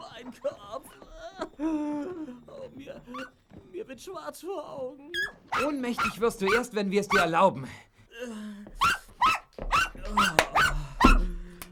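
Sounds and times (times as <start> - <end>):
speech: 0.2 - 0.9, 2.7 - 8.5
dog barking: 3.1 - 3.3, 5.2 - 7.4, 8.8 - 11.3.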